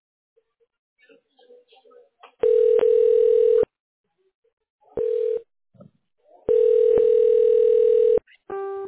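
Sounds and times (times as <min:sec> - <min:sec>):
electronic telephone ringback tones on an outgoing call to an agent: 0:02.4 - 0:03.7, 0:06.5 - 0:08.2.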